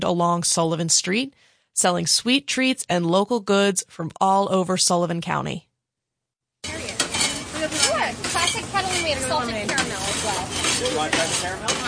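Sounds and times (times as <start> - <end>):
speech: 0.0 - 5.7, 9.1 - 11.8
kettle corn sizzling and crackling in a hot pot as it is stirred: 6.6 - 11.8
voices chattering at a street fair: 6.7 - 11.8.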